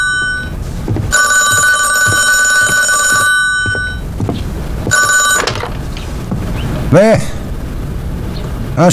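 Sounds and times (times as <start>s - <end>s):
telephone bell ringing: 0.0s - 0.5s, 1.1s - 4.0s, 4.9s - 5.7s
faint thumps: 0.0s - 6.7s
room noise: 0.0s - 8.9s
speech: 6.9s - 7.4s.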